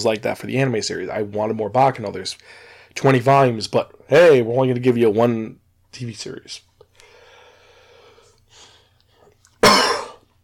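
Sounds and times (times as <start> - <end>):
speech: 0.0 - 6.7
person coughing while trying to hold it back: 9.6 - 10.3.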